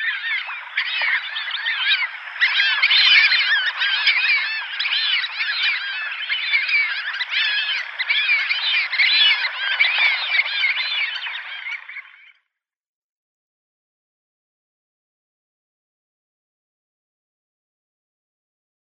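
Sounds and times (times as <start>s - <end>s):
Fulvous whistling duck flock calling: 0.0s - 12.4s.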